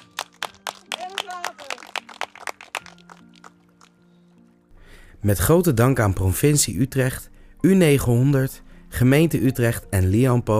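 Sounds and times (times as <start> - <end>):
small group clapping: 0.0 - 4.0
speech: 5.2 - 10.5.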